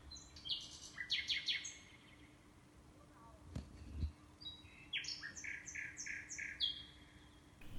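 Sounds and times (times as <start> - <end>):
common nightingale singing in spring: 0.1 - 2.3, 4.5 - 7.7.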